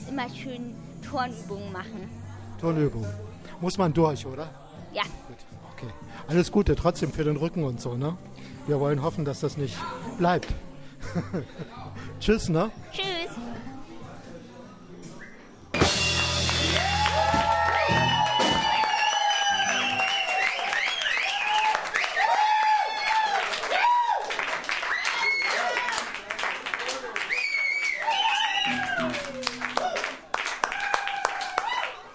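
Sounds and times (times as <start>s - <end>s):
speech: 0.1s - 13.4s
laughter: 11.0s - 12.0s
concert crowd whistles: 15.1s - 16.5s, 17.8s - 22.4s, 27.2s - 29.1s
large concert crowd applauding: 15.8s - 32.1s.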